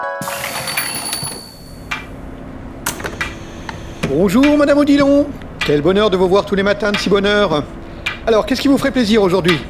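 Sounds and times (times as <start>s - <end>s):
faint shop door bell tinkle: 0.2s - 1.9s
shop door being pulled open: 0.2s - 2.1s
speech: 4.1s - 9.6s.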